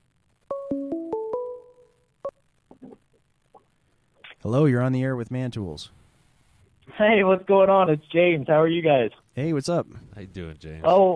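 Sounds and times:
electronic ringtone melody for an incoming phone call: 0.5 - 1.8
speech: 4.4 - 6.0, 7.0 - 11.1.

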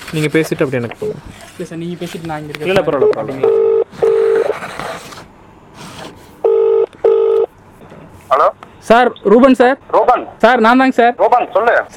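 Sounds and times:
speech: 0.1 - 4.0, 8.4 - 11.9
loud electronic telephone dialing tones in paired bursts: 3.4 - 4.5, 6.5 - 7.5.

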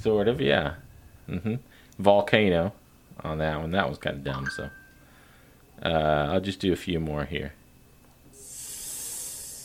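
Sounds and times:
speech: 0.0 - 4.8, 5.8 - 7.6
snake hissing: 8.4 - 9.6.

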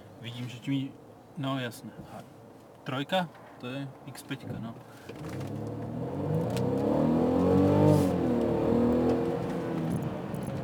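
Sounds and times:
speech: 0.2 - 6.7
car with EQ Boost engine revving while accelerating: 5.2 - 10.6.

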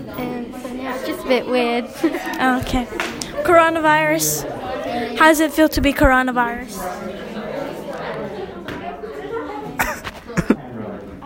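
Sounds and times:
chatter: 0.0 - 11.2
speech: 0.1 - 7.2
light laughter: 9.6 - 10.9
sharp loud coughs right up against the microphone: 9.8 - 10.7.

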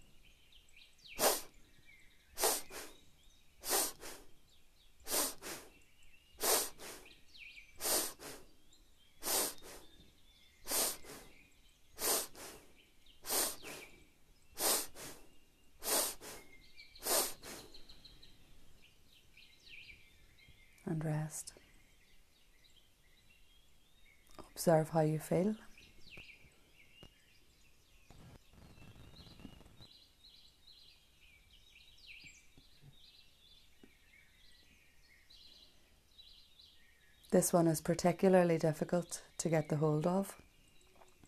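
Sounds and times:
sharp forceful sniffs through the nose in a breathing exercise: 1.2 - 1.6, 2.4 - 3.0, 3.6 - 4.4, 5.0 - 5.8, 6.4 - 7.2, 7.8 - 8.5, 9.2 - 10.0, 10.6 - 11.4, 12.0 - 14.0, 14.6 - 17.8
speech: 21.0 - 21.6, 24.6 - 25.6, 37.4 - 40.5.

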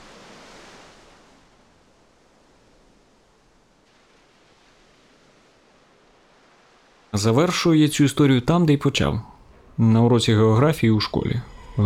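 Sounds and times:
Antarctic sea water rushing with ice floes: 0.0 - 11.8
speech: 7.2 - 11.8.

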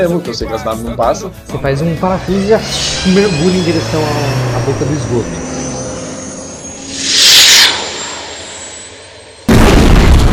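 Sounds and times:
speech: 0.0 - 5.6
rushing swell of noise in a video game: 1.7 - 9.5
missile explosion at a tunnel mouth in a video game: 9.5 - 10.3.

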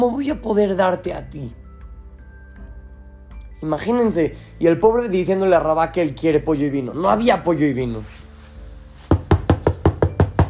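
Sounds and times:
speech: 0.0 - 1.6, 3.6 - 8.2
firm knocking on a house door: 9.1 - 10.4.

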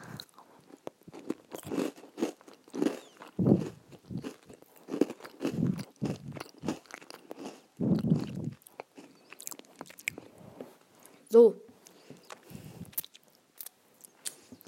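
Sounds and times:
crisp crunchy bite into something dry: 0.0 - 10.3
chewing with brittle crackles: 0.0 - 10.4, 11.8 - 14.6
soft mouth sounds: 0.0 - 11.2, 11.8 - 14.6
speech: 11.4 - 11.6.

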